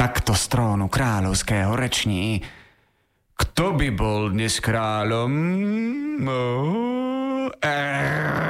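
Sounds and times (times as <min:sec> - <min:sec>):
speech: 0:00.4 - 0:02.6, 0:03.4 - 0:08.4
person imitating a lion's growl: 0:05.9 - 0:08.4.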